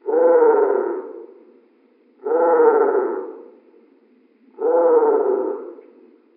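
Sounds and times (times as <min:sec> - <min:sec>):
crow cawing slowly: 0:00.1 - 0:01.2, 0:02.2 - 0:03.6, 0:04.6 - 0:05.9.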